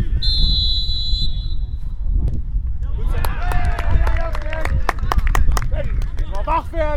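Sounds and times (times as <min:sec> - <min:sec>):
high whistle: 0:00.2 - 0:01.9
small football crowd cheering and shouting: 0:02.9 - 0:04.8
scattered clapping: 0:03.1 - 0:06.7.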